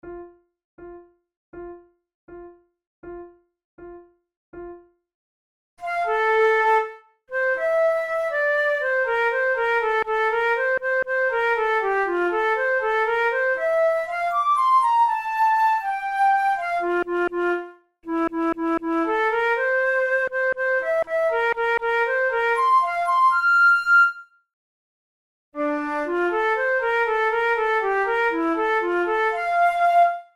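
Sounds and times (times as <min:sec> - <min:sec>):
flute duet playing a camp song: 0:05.8 - 0:24.3, 0:25.6 - 0:30.3.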